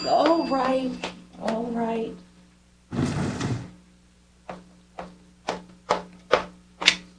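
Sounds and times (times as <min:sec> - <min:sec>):
speech: 0:00.5 - 0:02.3
chair scraping across a floor: 0:02.9 - 0:03.8.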